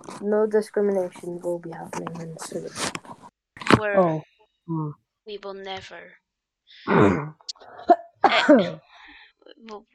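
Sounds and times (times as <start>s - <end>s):
speech: 0.1s - 3.1s, 3.8s - 8.9s, 9.6s - 9.9s
man clearing throat coughing: 6.9s - 8.8s.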